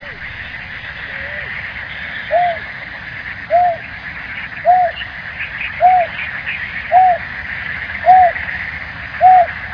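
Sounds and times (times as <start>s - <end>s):
background hiss: 0.0s - 9.7s
bird giving short arched calls in Higashiosaka, Japan: 0.0s - 9.7s.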